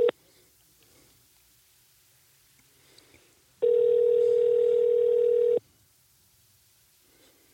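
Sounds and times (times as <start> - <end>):
telephone ringback tone on an outgoing call: 3.6 - 5.6.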